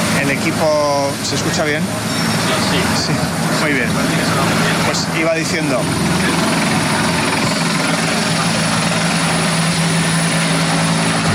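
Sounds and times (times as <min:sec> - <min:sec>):
aerial firefighting or emergency aircraft including a helicopter passing overhead: 0:00.0 - 0:11.3
speech: 0:00.3 - 0:06.5.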